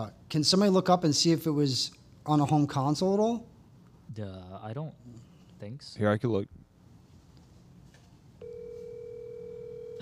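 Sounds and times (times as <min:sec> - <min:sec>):
speech: 0:00.0 - 0:03.5, 0:04.1 - 0:06.6
steady electronic phone line ringing tone: 0:08.4 - 0:10.0.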